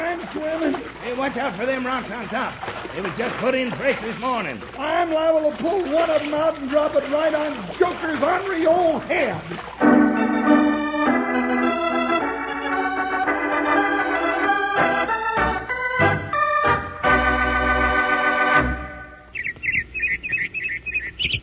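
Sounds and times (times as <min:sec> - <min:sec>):
speech: 0:00.3 - 0:10.0
loud instrumental music: 0:09.8 - 0:19.2
robin singing a springtime tune: 0:19.1 - 0:21.4.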